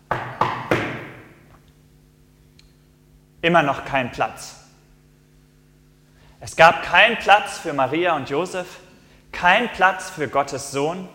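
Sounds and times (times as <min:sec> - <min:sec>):
knocking on a door: 0:00.1 - 0:01.3
speech: 0:03.4 - 0:04.6, 0:06.4 - 0:08.8, 0:09.4 - 0:11.1.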